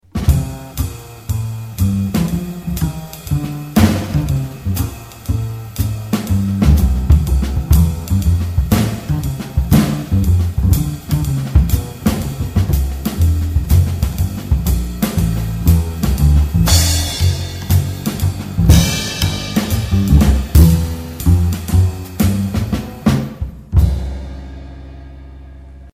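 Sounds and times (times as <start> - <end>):
jazz bass drums: 0.0 - 25.9.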